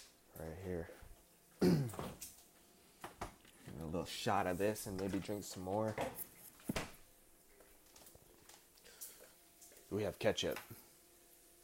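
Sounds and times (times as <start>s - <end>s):
speech: 0.4s - 1.8s, 3.9s - 6.2s, 10.0s - 10.8s
person coughing: 1.6s - 2.2s.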